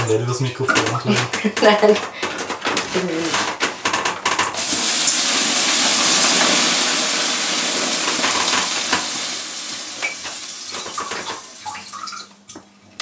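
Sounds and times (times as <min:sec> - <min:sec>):
speech: 0:00.1 - 0:02.2, 0:02.9 - 0:03.5
water poured onto hot sauna stones hissing: 0:04.6 - 0:11.7.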